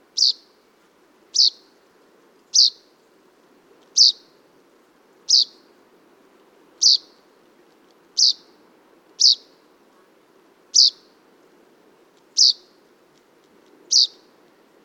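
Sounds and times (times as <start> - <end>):
common chaffinch Fringilla coelebs calling with crisp high notes: 0.2 - 0.5, 1.4 - 1.7, 2.6 - 2.9, 4.0 - 4.4, 5.3 - 5.6, 6.8 - 7.2, 8.2 - 8.5, 9.2 - 9.6, 10.8 - 11.1, 12.4 - 12.8, 13.9 - 14.3.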